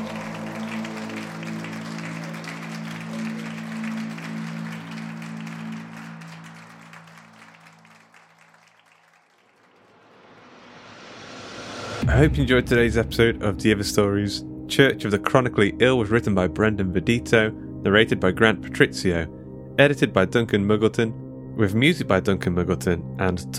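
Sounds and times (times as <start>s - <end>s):
room full of people clapping eagerly: 0.0s - 10.4s
speech: 12.0s - 23.5s.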